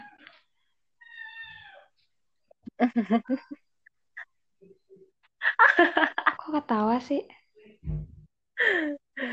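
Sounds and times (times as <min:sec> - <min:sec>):
kitten meowing: 0:01.0 - 0:01.8
laughter: 0:02.7 - 0:03.6, 0:05.4 - 0:06.4
speech: 0:02.8 - 0:03.7, 0:05.9 - 0:07.4.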